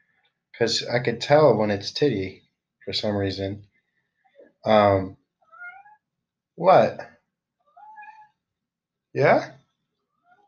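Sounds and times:
speech: 0.6s - 3.7s, 4.6s - 5.2s, 6.6s - 7.1s, 9.2s - 9.6s
male cat meowing: 5.5s - 6.0s, 7.7s - 8.3s.

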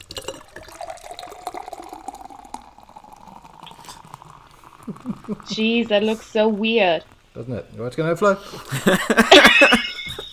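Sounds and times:
nitro beer pouring from an upside-down can into a glass: 0.0s - 8.0s
speech: 4.9s - 9.9s
laughter: 8.7s - 10.3s.

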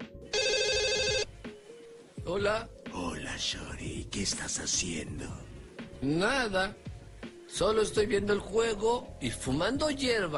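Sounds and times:
telephone ringing with electronic trill: 0.3s - 1.3s
speech: 2.3s - 6.9s, 7.5s - 10.3s.

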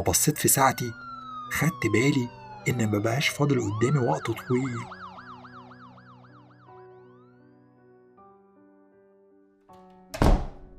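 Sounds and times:
speech: 0.0s - 5.0s
police car sirens wailing: 0.0s - 6.8s
loud thump: 10.2s - 10.7s.

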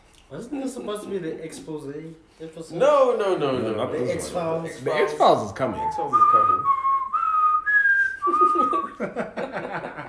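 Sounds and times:
speech: 0.3s - 6.8s, 8.2s - 10.0s
person whistling a short melody: 5.7s - 9.0s
laughter: 8.2s - 10.0s.

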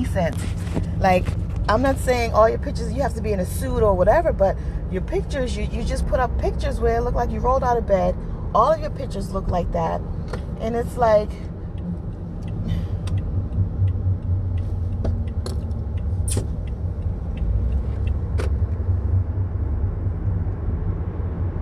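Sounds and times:
car driving on a road: 0.0s - 21.6s
car engine and tyre rumble on a road: 0.0s - 21.6s
speech: 0.1s - 11.5s
faint ticks and clicks: 11.7s - 18.6s.

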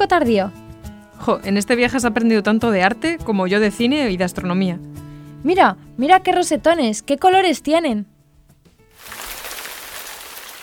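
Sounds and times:
speech: 0.0s - 0.6s, 1.2s - 8.1s
heavy rain pouring down at a monastery: 9.0s - 10.6s.

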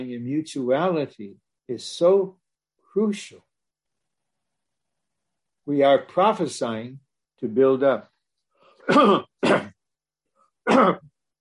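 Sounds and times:
speech: 0.0s - 3.5s, 5.7s - 8.1s, 8.9s - 9.8s, 10.6s - 11.1s
person clearing phlegm from the throat: 8.8s - 9.8s, 10.6s - 11.2s.

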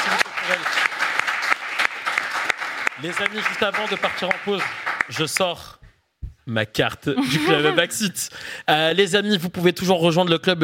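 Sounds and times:
studio audience applauding: 0.0s - 5.5s
speech: 3.0s - 5.8s, 6.5s - 10.6s
laughter: 7.2s - 8.1s.

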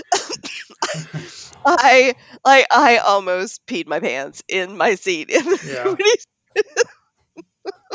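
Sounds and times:
harsh rapid coughing fit: 0.0s - 1.5s, 5.5s - 6.9s
speech: 0.9s - 7.0s.

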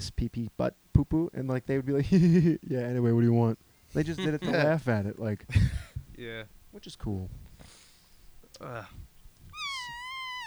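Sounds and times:
speech: 0.0s - 7.5s, 8.6s - 9.1s
laughter: 3.9s - 6.0s
person imitating a cat meow with their mouth: 9.6s - 10.4s.

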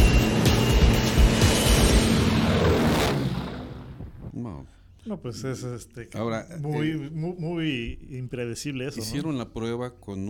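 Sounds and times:
airplane engine roaring during a takeoff roll: 0.0s - 4.4s
speech: 5.0s - 10.2s.

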